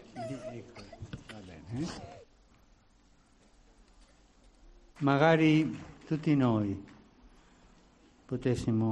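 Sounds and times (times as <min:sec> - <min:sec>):
ten-year-old boy crying and sobbing: 0:00.0 - 0:01.1
speech: 0:00.3 - 0:01.0, 0:01.7 - 0:02.2, 0:05.0 - 0:06.9, 0:08.3 - 0:08.9.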